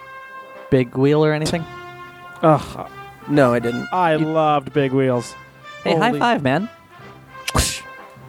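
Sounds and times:
speech: 0.7s - 1.8s, 2.4s - 6.8s
sharp whip crack: 7.5s - 7.9s.

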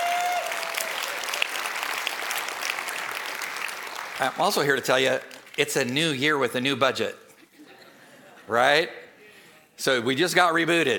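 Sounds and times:
church congregation clapping: 0.0s - 6.3s
speech: 4.2s - 7.2s, 8.5s - 9.0s, 9.8s - 10.9s.

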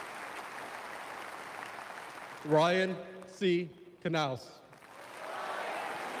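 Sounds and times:
scattered applause: 0.0s - 2.8s, 4.7s - 6.1s
speech: 2.4s - 4.6s
man reading names aloud: 2.5s - 4.6s
crowd noise: 5.0s - 6.1s
crowd calling out a name in unison: 5.2s - 6.1s.

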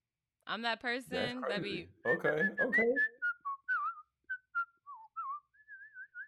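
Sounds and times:
speech: 0.5s - 3.1s
person whistling a lively wavering tune: 2.2s - 6.2s.

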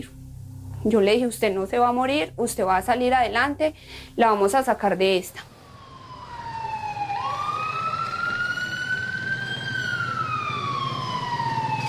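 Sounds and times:
speech: 0.8s - 5.5s
ambulance siren wailing: 5.4s - 11.8s
low road rumble: 5.4s - 11.8s.

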